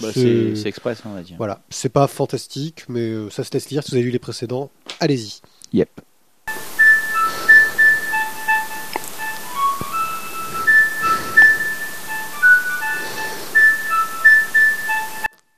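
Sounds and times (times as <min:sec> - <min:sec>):
speech: 0:00.0 - 0:06.1
telephone ringing with a whistle-like melodic tone: 0:06.5 - 0:15.3.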